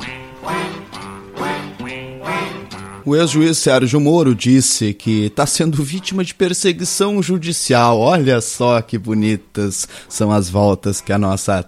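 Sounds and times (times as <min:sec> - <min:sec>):
duck quacking: 0:00.0 - 0:03.1
speech: 0:03.0 - 0:11.6.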